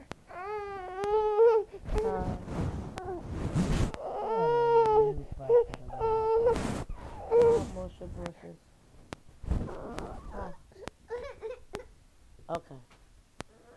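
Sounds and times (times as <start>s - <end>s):
infant fussing and crying: 0.3s - 3.3s, 3.9s - 7.8s, 9.6s - 12.0s.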